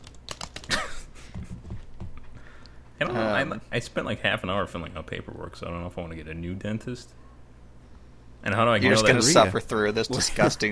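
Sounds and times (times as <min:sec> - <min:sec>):
loud typing on a computer keyboard: 0:00.0 - 0:00.8
speech: 0:03.0 - 0:07.3, 0:08.4 - 0:10.7.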